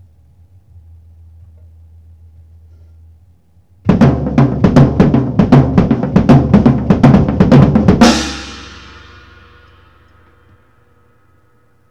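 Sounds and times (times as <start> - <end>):
acoustic tribal drum break: 3.9 - 9.1.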